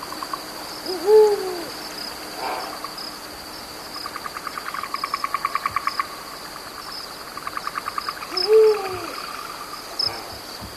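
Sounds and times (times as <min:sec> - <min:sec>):
rapid pulsing insect trills: 0:00.0 - 0:10.7
Eurasian eagle-owl hooting: 0:00.8 - 0:02.9, 0:07.8 - 0:10.4.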